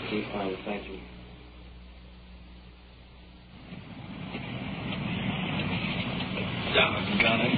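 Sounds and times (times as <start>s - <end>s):
speech: 0.1s - 1.2s
low rumble: 1.6s - 7.5s
heavy rain pouring: 3.6s - 7.5s.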